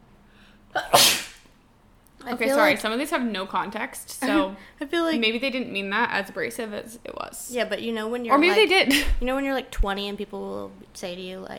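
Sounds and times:
person sneezing: 0:00.7 - 0:01.5
speech: 0:02.3 - 0:11.5.

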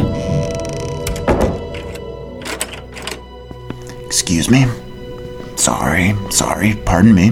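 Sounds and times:
heavy door swinging shut: 0:00.0 - 0:03.4
speech: 0:04.2 - 0:04.8, 0:05.6 - 0:07.3.

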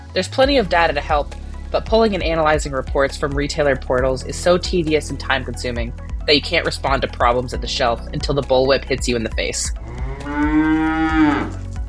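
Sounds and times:
speech: 0:00.2 - 0:10.8
cow mooing: 0:09.8 - 0:11.6.

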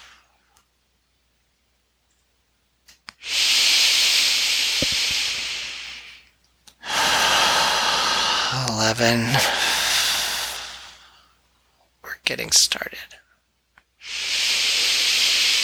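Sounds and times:
slow exhaling breath during a relaxation exercise: 0:03.2 - 0:11.4, 0:14.0 - 0:15.6
speech: 0:08.9 - 0:09.7, 0:12.4 - 0:13.2.

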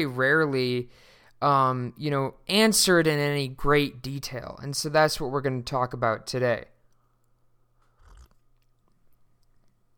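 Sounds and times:
speech: 0:00.0 - 0:06.7
sipping hot coffee: 0:06.9 - 0:09.9
swallowing: 0:07.8 - 0:09.9.

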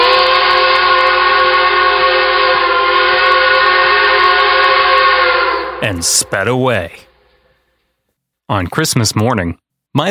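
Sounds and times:
steam train whistle blast from a departing train: 0:00.0 - 0:07.6
speech: 0:05.8 - 0:07.0, 0:08.5 - 0:10.0.

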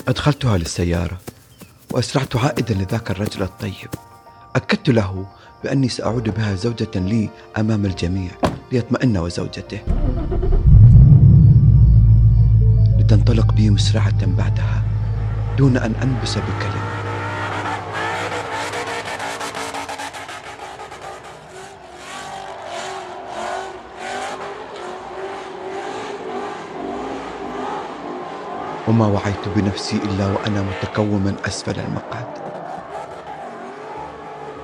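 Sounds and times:
speech: 0:00.0 - 0:01.3, 0:01.9 - 0:10.4, 0:13.1 - 0:14.9, 0:15.6 - 0:16.9, 0:28.9 - 0:32.4
drifting car tires screeching and skidding on asphalt: 0:00.0 - 0:04.2, 0:13.8 - 0:34.6
drifting car engine roaring and revving: 0:09.9 - 0:30.8.

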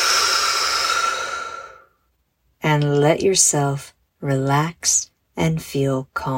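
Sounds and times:
deep breath in through nose and out through mouth: 0:00.0 - 0:02.0
speech: 0:02.8 - 0:06.3.

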